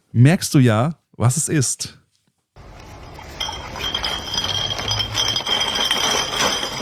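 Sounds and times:
speech: 0:00.1 - 0:02.0
glass bottles clinking in drink crates carried on a bicycle handlebar: 0:02.6 - 0:06.7.

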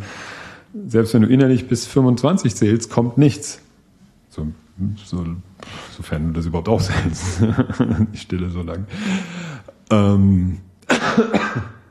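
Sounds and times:
speech: 0:00.7 - 0:03.7, 0:04.4 - 0:11.8
laughter: 0:06.7 - 0:09.4
harsh raspy coughing: 0:10.8 - 0:11.8.

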